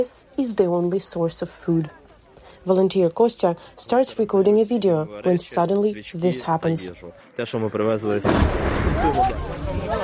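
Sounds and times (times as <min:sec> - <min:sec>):
speech: 0:00.0 - 0:02.0, 0:02.6 - 0:10.0
artillery shell exploding near a crowd at food aid vehicles: 0:08.2 - 0:10.0
sustained rumbling after an artillery shell blast: 0:08.2 - 0:10.0.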